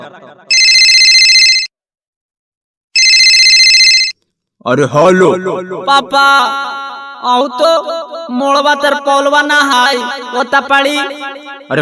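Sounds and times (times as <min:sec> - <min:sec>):
speech: 0:00.0 - 0:00.6, 0:04.6 - 0:11.7
phone ringing in electronic trills: 0:00.5 - 0:01.8, 0:03.0 - 0:04.3.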